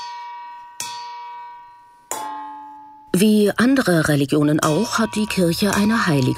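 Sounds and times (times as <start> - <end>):
long wooden spoon striking a metal colander imitating church bells: 0.0 - 3.0, 4.6 - 6.3
speech: 3.2 - 6.3.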